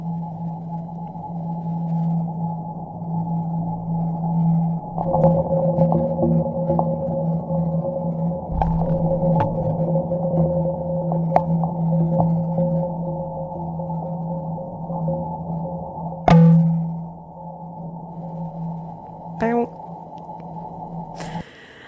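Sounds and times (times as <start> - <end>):
steady low mechanical hum: 0.0 - 21.8
brief resonant plong: 8.5 - 12.5, 16.2 - 17.1.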